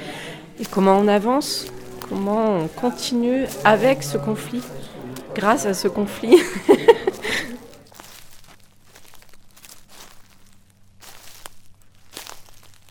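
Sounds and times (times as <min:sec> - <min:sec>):
laughter: 0:00.0 - 0:08.1
faint low hum: 0:00.0 - 0:12.8
footsteps crunching across a gritty or leafy surface: 0:00.0 - 0:12.8
speech: 0:00.6 - 0:07.6.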